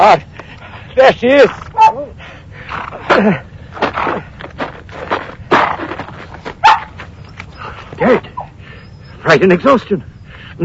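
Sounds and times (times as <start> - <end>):
speech: 0.0 - 0.3, 1.0 - 4.3, 8.0 - 8.4, 9.2 - 10.6
rustle of movement: 0.2 - 10.6
pack of hounds whimpering and whining: 1.7 - 2.1, 6.6 - 10.4.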